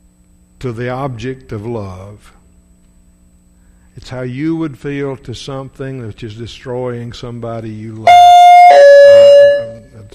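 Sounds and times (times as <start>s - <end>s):
speech: 0.6s - 2.4s, 4.0s - 8.9s
bell ringing: 8.1s - 9.9s.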